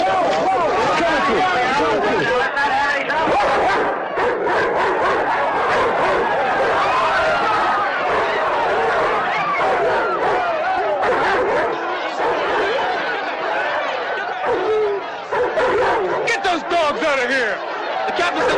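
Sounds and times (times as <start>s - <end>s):
excited crowd chatter: 0.0s - 18.5s
laughter: 0.0s - 18.5s
several dogs barking and yipping: 3.2s - 16.9s, 17.6s - 18.5s.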